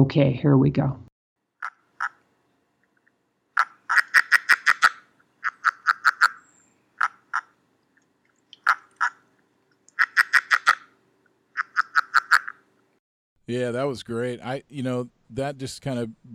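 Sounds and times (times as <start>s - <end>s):
speech: 0.0s - 1.0s, 13.5s - 16.3s
male and female frogs calling back and forth: 1.6s - 2.4s, 3.5s - 12.8s.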